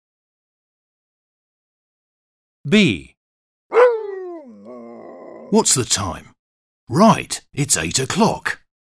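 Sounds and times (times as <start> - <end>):
speech: 2.6 - 3.1, 5.5 - 8.6
dog barking with drawn-out falling tone: 3.7 - 4.5.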